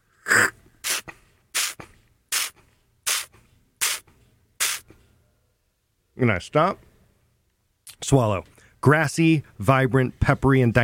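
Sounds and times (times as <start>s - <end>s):
slurping air through the lips while tasting olive oil: 0.2s - 2.5s
speech: 6.2s - 6.9s, 8.1s - 10.8s.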